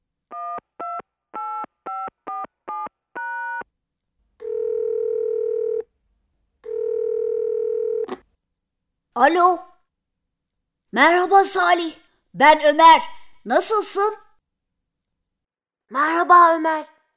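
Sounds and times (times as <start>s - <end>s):
telephone ringback tones: 4.4s - 5.8s, 6.7s - 8.1s
speech: 9.2s - 9.7s, 10.9s - 14.2s, 15.9s - 16.9s.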